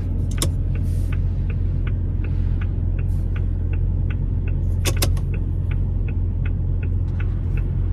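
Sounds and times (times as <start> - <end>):
low car engine hum: 0.0 - 7.9
metallic car turn signal ticking: 0.0 - 7.9.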